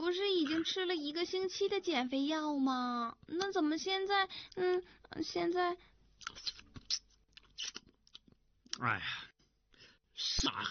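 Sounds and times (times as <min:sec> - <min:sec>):
speech: 0:00.1 - 0:06.6, 0:08.8 - 0:09.3, 0:10.2 - 0:10.6
chewing on an oily braised pork knuckle: 0:06.2 - 0:08.8.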